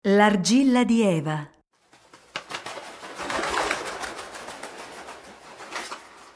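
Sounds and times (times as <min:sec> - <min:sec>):
speech: 0:00.1 - 0:01.6
doves taking flight in a rush of wing flaps: 0:01.8 - 0:06.3.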